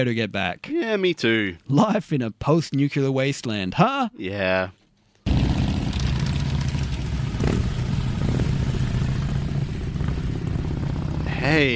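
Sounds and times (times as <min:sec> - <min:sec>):
speech: 0:00.0 - 0:04.8, 0:11.4 - 0:11.7
several car and truck engines rumbling and revving together: 0:05.3 - 0:11.7.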